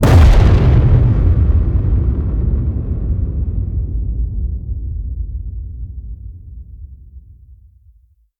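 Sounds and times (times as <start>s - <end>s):
distorted cinematic hits: 0.0s - 6.1s.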